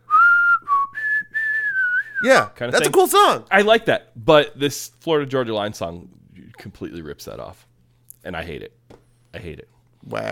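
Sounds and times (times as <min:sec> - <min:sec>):
whistled melody as the intro of a song: 0:00.0 - 0:02.4
speech: 0:02.2 - 0:10.3.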